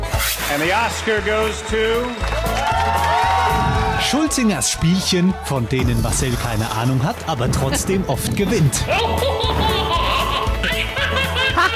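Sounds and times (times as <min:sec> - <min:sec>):
speech: 0:00.5 - 0:03.2, 0:04.0 - 0:09.9
baby laughing in high bubbly giggles: 0:08.9 - 0:11.7.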